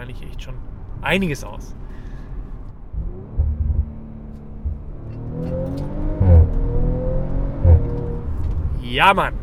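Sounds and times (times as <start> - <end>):
speech: 0.4 - 1.8, 5.4 - 6.0, 8.9 - 9.4
car engine rumbling and revving as the car drives: 2.7 - 8.6.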